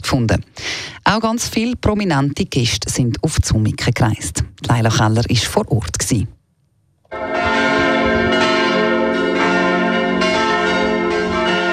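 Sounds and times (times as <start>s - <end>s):
speech: 0.1s - 6.4s
heavy church bells pealing: 7.1s - 11.7s.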